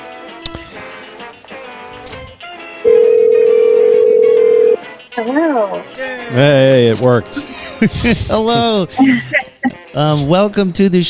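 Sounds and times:
phone ringback tone: 0:02.9 - 0:04.8
speech: 0:05.2 - 0:11.0
laughter: 0:06.0 - 0:10.3.

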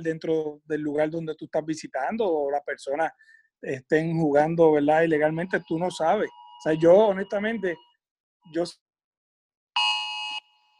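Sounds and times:
speech: 0:00.0 - 0:08.8
phone emergency alert tone buzzing: 0:05.0 - 0:08.0, 0:09.8 - 0:10.7.

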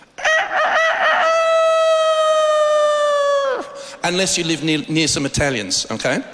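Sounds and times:
rooster crowing: 0:00.2 - 0:03.6
speech: 0:04.1 - 0:06.3.

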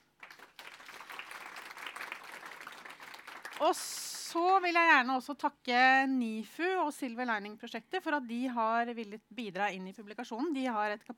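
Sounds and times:
audience applause: 0:00.0 - 0:03.7
speech: 0:03.6 - 0:11.1.

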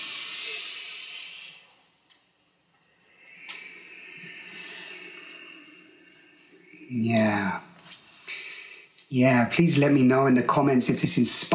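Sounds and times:
deep slow breathing with a soft airy hiss: 0:00.0 - 0:02.0, 0:02.7 - 0:09.0
speech: 0:06.9 - 0:07.6, 0:09.1 - 0:11.5.

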